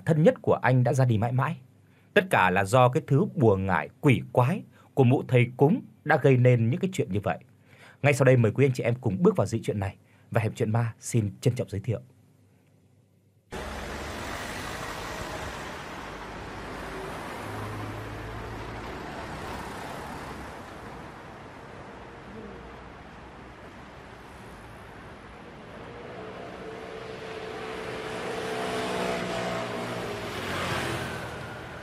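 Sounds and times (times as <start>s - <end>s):
speech: 0.1s - 12.1s
traffic and engine noise as a car drives out of a noisy city: 13.5s - 31.8s.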